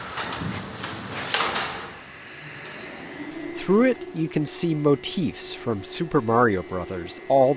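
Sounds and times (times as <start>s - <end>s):
old elevator lattice gate sliding along its track: 0.0s - 5.0s
speech: 3.7s - 7.5s.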